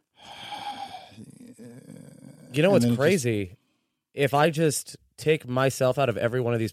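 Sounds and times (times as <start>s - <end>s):
person breathing nervously and heavily into a microphone: 0.0s - 1.4s
speech: 2.5s - 3.6s, 4.2s - 6.7s.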